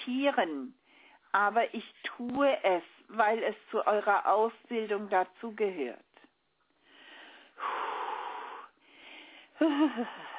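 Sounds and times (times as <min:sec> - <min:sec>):
speech: 0:00.1 - 0:06.0, 0:09.6 - 0:10.3
heavy snorting breaths: 0:06.9 - 0:10.3.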